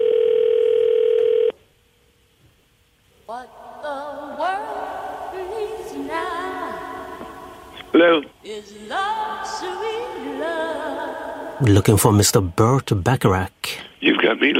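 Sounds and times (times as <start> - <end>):
telephone dial tone: 0.0 - 1.5
speech: 7.9 - 14.5
voices talking over a faint telephone line: 11.6 - 14.5.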